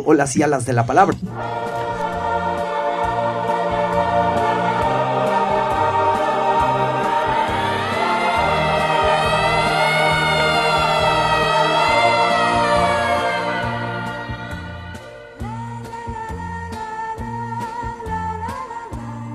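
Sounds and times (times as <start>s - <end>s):
speech: 0.0s - 1.9s
rhythmic music with a steady beat: 0.0s - 19.3s
distant siren wailing: 7.4s - 15.0s.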